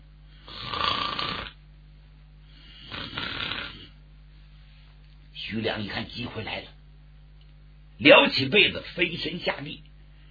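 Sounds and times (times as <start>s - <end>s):
tired man snoring asleep on a chair: 0.3s - 1.6s, 2.5s - 4.0s
speech: 5.5s - 6.8s, 8.0s - 9.9s.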